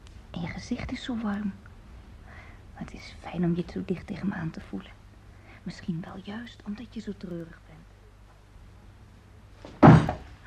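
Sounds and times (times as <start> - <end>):
speech: 0.6 - 1.7, 2.8 - 5.0, 5.6 - 7.6
thrown book landing with a heavy thud: 9.7 - 10.3.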